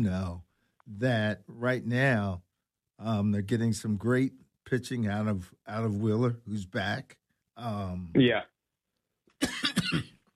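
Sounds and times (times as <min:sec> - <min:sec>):
speech: 0:00.0 - 0:08.5, 0:09.4 - 0:10.1
person coughing: 0:09.4 - 0:10.2.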